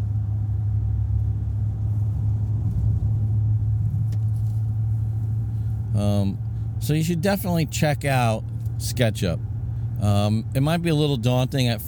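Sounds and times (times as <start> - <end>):
car engine and tires droning on a highway: 0.0 - 11.8
speech: 6.0 - 11.8.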